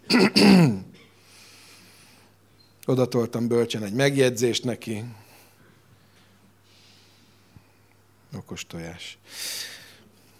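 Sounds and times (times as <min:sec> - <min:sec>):
person coughing in an apartment: 0:00.0 - 0:01.2
speech: 0:02.9 - 0:05.2, 0:08.3 - 0:09.8.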